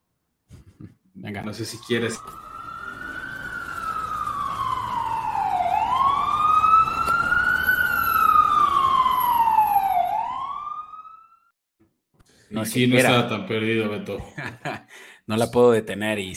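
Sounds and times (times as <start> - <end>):
speech: 1.3 - 2.4, 12.6 - 16.3
faint road noise: 1.4 - 10.3
ambulance siren wailing: 1.5 - 11.5
laughter: 14.1 - 14.9.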